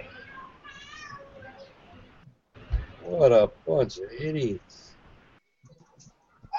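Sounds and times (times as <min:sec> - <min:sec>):
cat meowing: 0:00.0 - 0:01.7
speech: 0:03.1 - 0:04.9.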